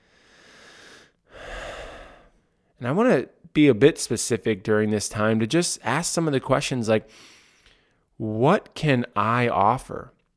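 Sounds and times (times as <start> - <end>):
slow deep breath: 0.0 - 2.7, 7.1 - 8.1
speech: 2.8 - 7.4, 8.2 - 10.2.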